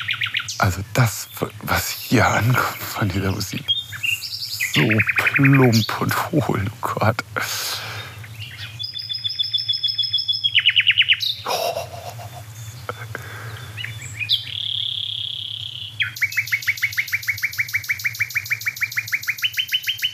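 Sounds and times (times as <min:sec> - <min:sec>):
bird singing at night in rapid trills and chirps: 0:00.0 - 0:07.3, 0:07.9 - 0:20.1
steady low hum: 0:00.0 - 0:19.5
laughter: 0:00.6 - 0:03.5, 0:04.7 - 0:08.0, 0:11.5 - 0:13.7
speech: 0:00.6 - 0:03.8, 0:04.8 - 0:07.8.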